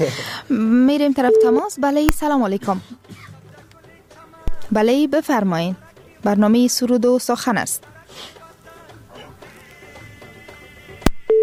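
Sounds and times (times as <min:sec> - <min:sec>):
speech: 0:00.0 - 0:03.3, 0:04.7 - 0:08.4
telephone busy tone after a call drops: 0:01.3 - 0:01.7, 0:11.1 - 0:11.4.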